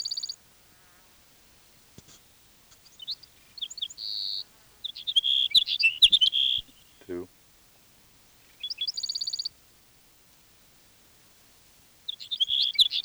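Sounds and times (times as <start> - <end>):
sage sparrow song: 0.0 - 0.4, 2.0 - 7.3, 8.4 - 9.6, 12.0 - 13.0.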